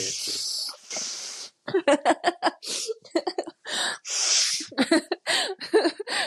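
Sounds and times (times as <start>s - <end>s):
runny nose sniffling: 0.0s - 1.7s, 2.6s - 3.0s, 3.8s - 4.8s
choppy laughing voices: 1.7s - 3.6s, 4.6s - 6.2s.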